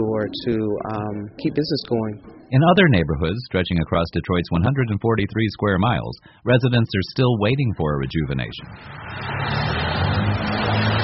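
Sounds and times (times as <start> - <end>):
speech: 0.0 - 10.4
heavy road traffic along an avenue in Detroit: 8.6 - 11.0.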